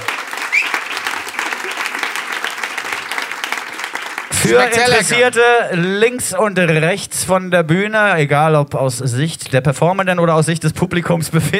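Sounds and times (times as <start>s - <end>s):
crowd applauding: 0.0s - 5.4s
speech: 4.4s - 11.5s.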